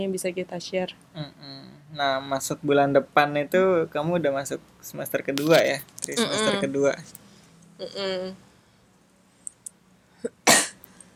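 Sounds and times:
speech: 0:00.0 - 0:07.2, 0:07.8 - 0:08.4
throaty voiced sound: 0:01.2 - 0:02.1, 0:06.0 - 0:06.8.

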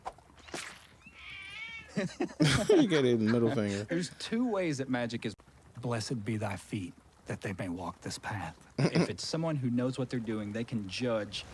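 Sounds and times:
mother cat meowing: 0:01.1 - 0:02.0
laughter: 0:01.9 - 0:04.1
speech: 0:02.0 - 0:11.5.

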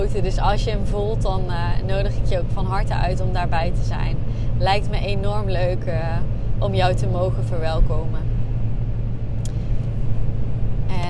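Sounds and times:
road rumble inside a moving car: 0:00.0 - 0:11.0
speech: 0:00.1 - 0:08.3
faint click: 0:09.4 - 0:09.6.

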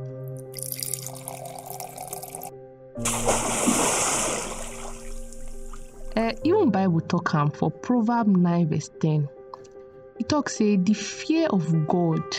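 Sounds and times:
water pouring and splashing: 0:00.5 - 0:06.1
speech: 0:03.0 - 0:03.6, 0:06.8 - 0:09.4, 0:10.3 - 0:12.3.

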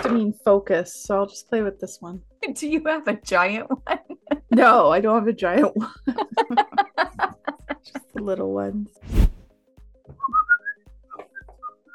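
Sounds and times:
speech: 0:00.1 - 0:06.9, 0:08.2 - 0:09.3
laughter: 0:03.7 - 0:04.7, 0:05.5 - 0:08.2
person whistling a wavering tune: 0:10.1 - 0:11.9.

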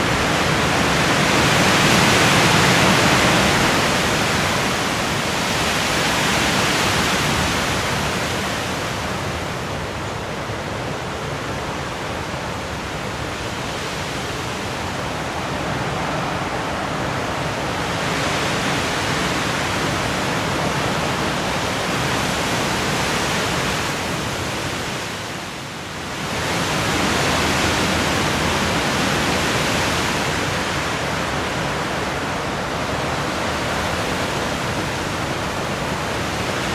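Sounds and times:
strong wind roaring: 0:00.0 - 0:36.7.

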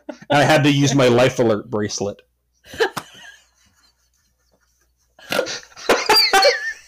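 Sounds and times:
speech: 0:00.3 - 0:02.9
wheezy coughing fit: 0:05.2 - 0:06.5.

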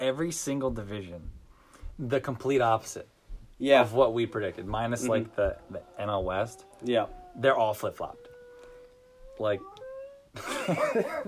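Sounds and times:
speech: 0:00.0 - 0:01.4, 0:02.0 - 0:08.3, 0:09.4 - 0:09.7, 0:10.4 - 0:11.2
dog yelping: 0:03.8 - 0:10.4
laughter: 0:10.4 - 0:11.2.

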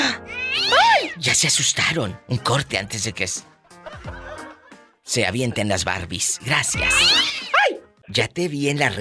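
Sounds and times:
cat meowing: 0:00.2 - 0:01.2, 0:06.8 - 0:07.6
speech: 0:01.2 - 0:03.6, 0:05.1 - 0:07.4, 0:08.1 - 0:08.9.

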